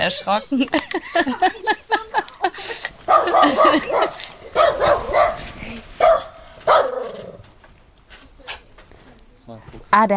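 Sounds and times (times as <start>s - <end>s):
speech: 0.0s - 1.8s, 10.0s - 10.1s
laughter: 0.0s - 4.8s
dog barking excitedly at a fox: 3.0s - 7.4s.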